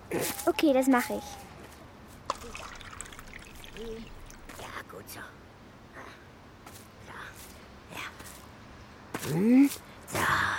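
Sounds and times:
speech: 0.1s - 1.5s, 3.8s - 4.2s, 5.0s - 5.4s, 9.2s - 10.5s
warm water poured from a thermos into small feeding bowls: 2.3s - 4.6s.

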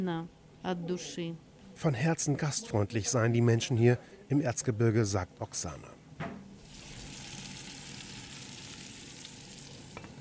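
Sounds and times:
speech: 0.0s - 6.0s
potato pancakes frying in a pan: 6.6s - 10.1s.

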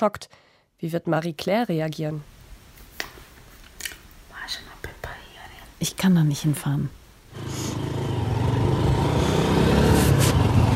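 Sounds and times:
speech: 0.0s - 2.4s, 5.8s - 7.6s
motorcycle taxi engine droning after rain: 7.3s - 10.7s.

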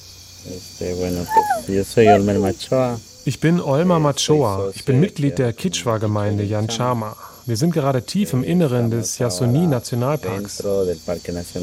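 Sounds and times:
night insects of Amazon lowland rainforest in eastern Ecuador buzzing: 0.0s - 11.6s
low calls in Amazon lowland rainforest at night: 0.4s - 4.9s, 5.8s - 11.2s
speech: 0.4s - 11.6s.

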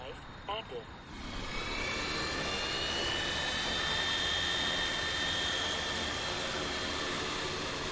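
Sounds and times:
six motors of a blood-product-carrying hexacopter drone spinning up: 1.0s - 7.8s.

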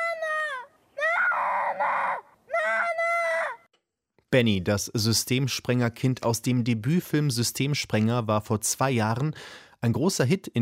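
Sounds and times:
child screaming in a film scene: 0.0s - 3.7s
speech: 4.3s - 10.6s.

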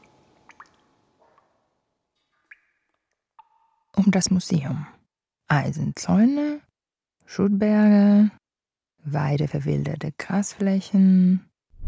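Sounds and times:
water dripping from a leaking ceiling: 0.0s - 4.0s
speech: 4.0s - 6.6s, 7.3s - 8.4s, 9.0s - 11.5s.

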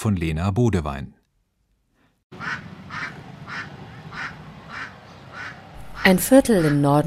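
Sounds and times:
speech: 0.0s - 1.2s, 6.0s - 7.0s
geese and ducks quacking in a street in northern Jakarta: 2.3s - 7.0s
rumble of street noise in northern Jakarta: 2.3s - 7.0s.

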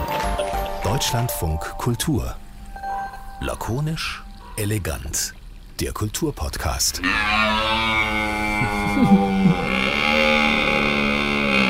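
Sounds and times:
speech: 0.8s - 2.4s, 3.4s - 7.9s, 8.6s - 9.9s
stag roaring: 7.0s - 11.6s.

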